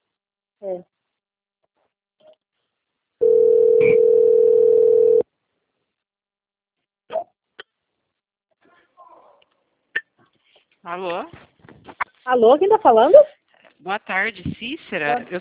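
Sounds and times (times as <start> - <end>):
speech: 0.6 - 0.9, 10.9 - 11.4, 12.3 - 15.3
telephone dial tone while a call is being placed: 3.2 - 5.2.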